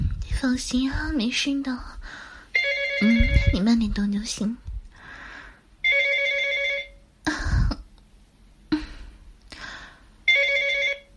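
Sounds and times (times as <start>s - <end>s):
speech: 0.4s - 2.2s, 3.0s - 4.6s
phone electronic ringtone chiming for an incoming call: 2.6s - 3.6s, 5.8s - 7.0s, 10.3s - 11.1s.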